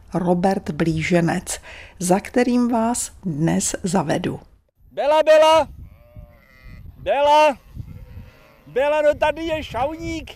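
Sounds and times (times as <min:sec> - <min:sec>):
speech: 0:00.1 - 0:05.8, 0:07.0 - 0:07.6, 0:08.7 - 0:10.3
sheep bleating: 0:05.8 - 0:09.2.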